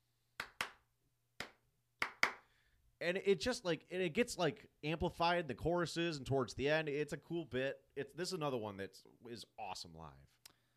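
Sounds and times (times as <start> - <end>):
sharp hand claps keeping a clap-along beat in a song: 0.4 - 2.5
speech: 3.0 - 10.4.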